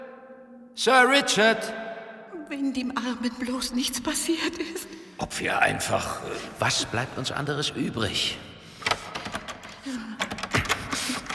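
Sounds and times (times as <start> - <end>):
speech: 0.8 - 1.8, 2.5 - 9.0
door handle jiggled and rattled against a locked door: 8.8 - 11.3.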